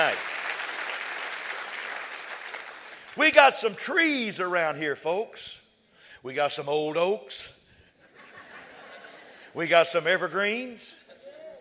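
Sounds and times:
church congregation clapping hands: 0:00.0 - 0:03.9
speech: 0:03.2 - 0:05.6, 0:06.2 - 0:07.6, 0:09.6 - 0:11.0
laughter: 0:08.0 - 0:09.5.

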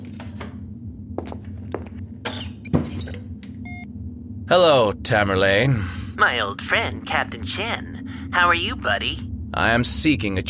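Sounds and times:
door squeaking and creaking: 0:00.0 - 0:00.6, 0:02.2 - 0:03.7
low steady hum: 0:00.0 - 0:10.4
speech: 0:04.5 - 0:10.4.

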